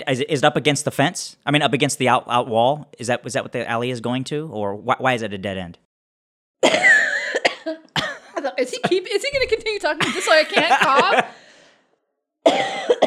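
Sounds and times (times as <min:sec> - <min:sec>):
speech: 0:00.0 - 0:05.8, 0:06.6 - 0:06.9, 0:08.6 - 0:11.4
person coughing from a throat tickle: 0:06.6 - 0:08.9, 0:10.0 - 0:11.3, 0:12.4 - 0:13.0
laughter: 0:08.6 - 0:11.5.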